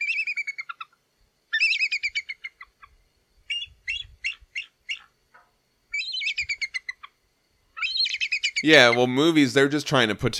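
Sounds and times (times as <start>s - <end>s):
bald eagle call played from recording: 0.0s - 7.2s, 7.8s - 9.2s
speech: 8.6s - 10.3s.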